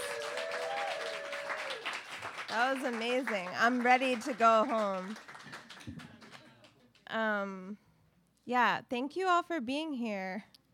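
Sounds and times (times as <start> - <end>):
crowd applauding: 0.0 - 6.8
speech: 2.5 - 5.3, 7.1 - 7.8, 8.5 - 10.5.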